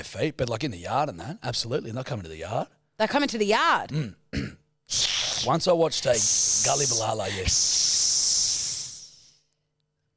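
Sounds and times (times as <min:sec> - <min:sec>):
speech: 0:00.0 - 0:07.9
person hissing like a snake: 0:04.9 - 0:09.4.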